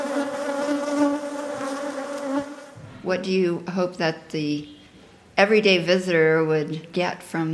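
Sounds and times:
bees buzzing: 0.0 - 2.8
speech: 3.1 - 4.8, 5.4 - 7.5.

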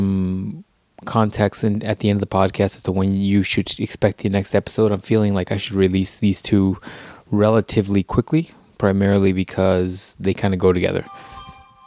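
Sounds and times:
speech: 1.0 - 11.4
phone notification ding: 11.0 - 11.8.

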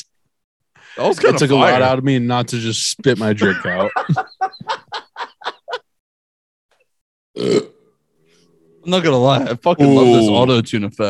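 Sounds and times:
laughter: 1.0 - 1.9, 3.1 - 5.9
speech: 1.0 - 4.8, 7.4 - 7.7, 8.9 - 11.0
loud burp: 7.4 - 8.0.

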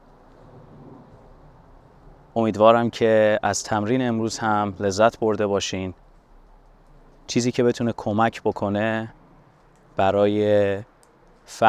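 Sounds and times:
steady rain: 0.0 - 11.6
speech: 2.4 - 6.0, 7.3 - 9.2, 10.0 - 10.9, 11.5 - 11.6.

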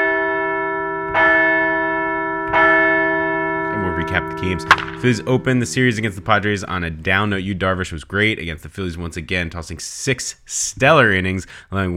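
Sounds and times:
large bell ringing with long resonant humming tone: 0.0 - 7.0
speech: 4.1 - 11.9.

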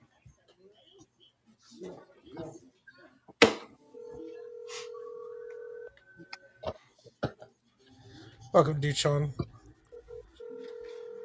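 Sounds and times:
speech: 1.8 - 2.5, 8.5 - 9.5
steady electronic telephone tone: 4.0 - 5.9, 9.9 - 11.2.

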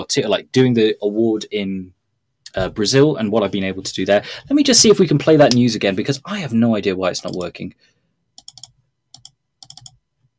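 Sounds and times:
speech: 0.1 - 7.9
rapid computer clicking: 7.2 - 7.5, 8.4 - 10.0.

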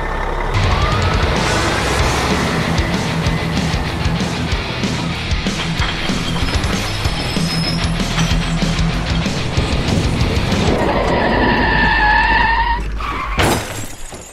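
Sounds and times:
truck engine roaring as it accelerates during a driving test: 0.0 - 13.4
tires screeching into a skid: 0.0 - 13.8
rattling and clattering: 3.0 - 14.3.

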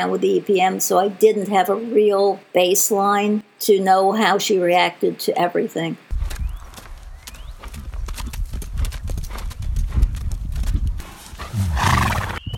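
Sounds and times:
speech: 0.0 - 6.0
horse hooves clip-clopping: 6.1 - 12.5
horse whinny: 11.5 - 12.4.

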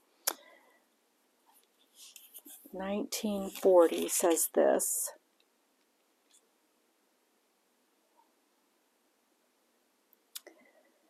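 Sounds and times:
pages of a Bible being turned: 1.6 - 2.7, 3.4 - 4.4
speech: 2.7 - 5.2.

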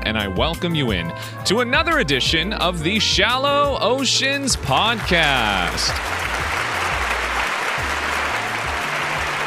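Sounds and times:
speech: 0.2 - 6.2
crowd applauding: 4.8 - 9.4.

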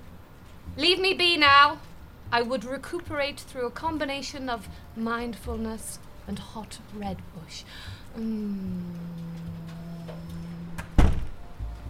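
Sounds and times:
speech: 0.8 - 9.4
door creaking: 8.6 - 11.5
door shutting with a thud: 10.8 - 11.4.

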